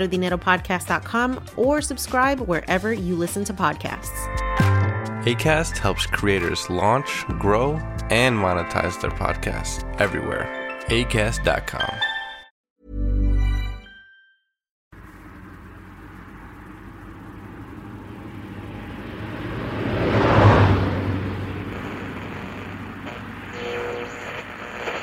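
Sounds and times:
speech: 0:00.0 - 0:04.6, 0:05.2 - 0:12.1
car being driven, road and engine rumble: 0:14.9 - 0:24.9.

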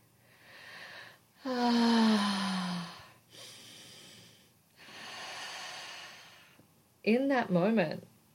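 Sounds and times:
deep breaths in and out: 0:00.1 - 0:06.7
speech: 0:01.4 - 0:01.8, 0:07.1 - 0:08.1
low voiced sigh on an exhale: 0:01.4 - 0:03.2.

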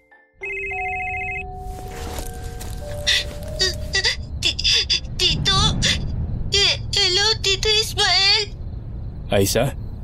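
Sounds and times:
cellphone ringing with bright electronic tones: 0:00.4 - 0:04.0
hum: 0:00.7 - 0:10.0
speech: 0:09.3 - 0:09.8.

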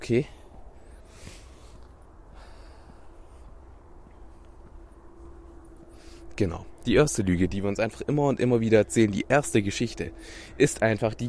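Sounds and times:
speech: 0:00.1 - 0:00.4, 0:06.4 - 0:11.2
heavy breathing as someone catches their breath: 0:00.3 - 0:04.5, 0:05.8 - 0:06.4, 0:10.1 - 0:10.6
deep breathy exhale: 0:00.8 - 0:03.4, 0:10.2 - 0:10.6.

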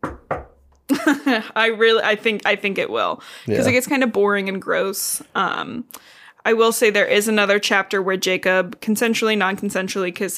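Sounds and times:
knocks on a wooden surface: 0:00.0 - 0:00.7
speech: 0:00.9 - 0:10.3.

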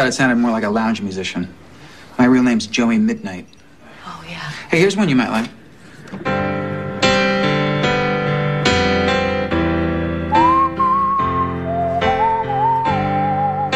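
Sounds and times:
speech: 0:00.0 - 0:01.6, 0:02.2 - 0:03.6, 0:04.3 - 0:06.4
instrumental backing with sustained chords: 0:06.1 - 0:13.7
whistled song melody: 0:10.3 - 0:13.7.

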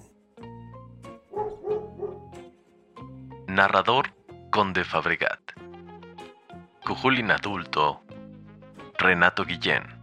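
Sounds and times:
dog barking: 0:01.3 - 0:02.3
speech: 0:03.6 - 0:05.5, 0:06.9 - 0:08.1, 0:09.0 - 0:09.9.

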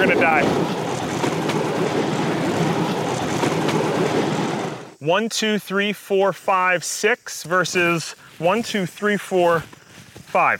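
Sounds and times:
speech: 0:00.0 - 0:00.9, 0:05.0 - 0:10.5
bamboo train rumbling on rails with engine drone and clatter: 0:00.0 - 0:05.0.

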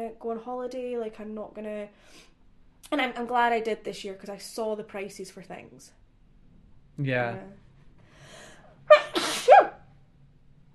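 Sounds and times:
speech: 0:00.0 - 0:02.3, 0:02.9 - 0:06.0, 0:07.0 - 0:07.6
person sneezing: 0:08.9 - 0:09.8.

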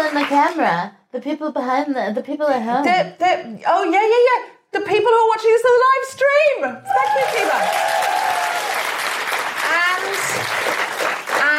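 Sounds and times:
speech: 0:00.2 - 0:08.1
people whooping and cheering: 0:06.9 - 0:09.2
theatre audience applause at a live show: 0:06.9 - 0:11.5.

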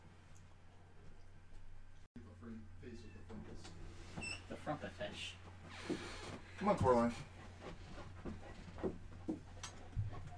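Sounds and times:
speech: 0:04.7 - 0:07.3
dog panting: 0:06.8 - 0:10.3.

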